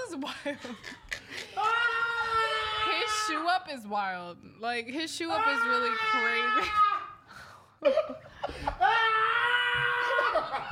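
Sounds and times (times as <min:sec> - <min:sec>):
speech: 0:00.2 - 0:01.8, 0:03.3 - 0:06.9, 0:07.8 - 0:09.2
person screaming: 0:01.5 - 0:03.4, 0:05.4 - 0:07.2, 0:08.8 - 0:10.5.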